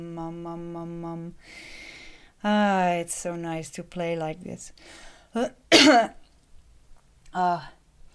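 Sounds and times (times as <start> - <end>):
speech: 2.4 - 6.2, 7.3 - 7.8
person clearing throat: 5.7 - 6.2
person coughing raspily: 5.7 - 6.2.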